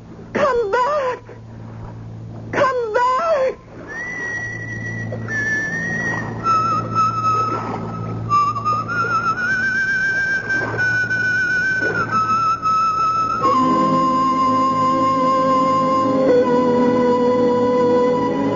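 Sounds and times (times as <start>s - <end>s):
steady low hum: 0.0s - 18.5s
woman whistling a slow tune: 3.9s - 18.5s.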